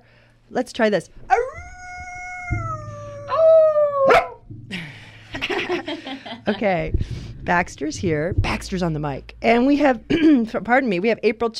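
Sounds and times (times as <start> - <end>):
speech: 0.5 - 1.4, 6.4 - 11.5
dog howling: 1.3 - 4.4
laughter: 4.7 - 6.6.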